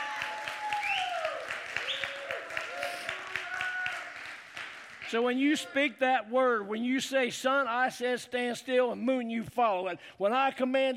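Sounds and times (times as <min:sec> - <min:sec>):
audience clapping in praise: 0:00.0 - 0:05.7
speech: 0:05.1 - 0:10.9.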